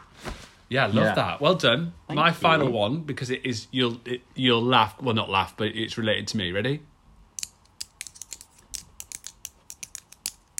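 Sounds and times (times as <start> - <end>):
speech: 0.7 - 6.9
crochet hooks clicking together: 7.4 - 10.5.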